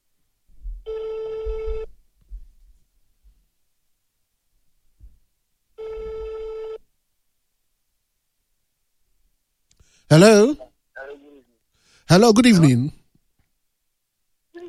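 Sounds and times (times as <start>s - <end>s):
telephone line ringing as a radio station calls a listener: 0.9s - 1.9s, 5.8s - 6.8s
speech: 10.1s - 10.6s, 12.0s - 13.0s.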